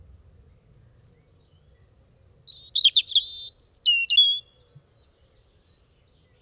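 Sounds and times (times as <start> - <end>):
European robin singing: 2.5 - 4.7.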